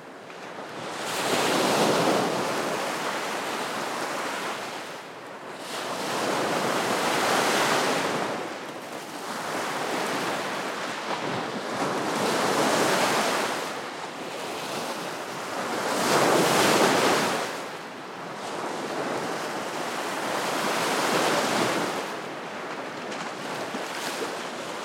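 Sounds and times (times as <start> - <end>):
freshwater waves crashing on the shore of a lake beach: 0.6 - 24.8.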